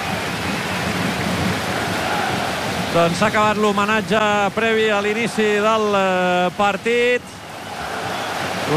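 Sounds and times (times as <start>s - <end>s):
steady dense rain pouring: 0.0s - 8.7s
speech: 3.0s - 7.4s.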